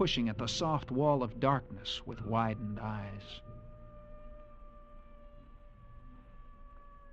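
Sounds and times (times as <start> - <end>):
speech: 0.0 - 3.5
coyotes howling at night: 0.0 - 5.6.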